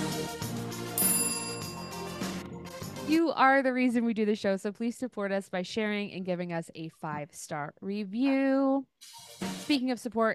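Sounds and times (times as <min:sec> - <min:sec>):
bright bell-like notification bell sound effect: 0:01.0 - 0:02.6
speech: 0:03.1 - 0:10.3.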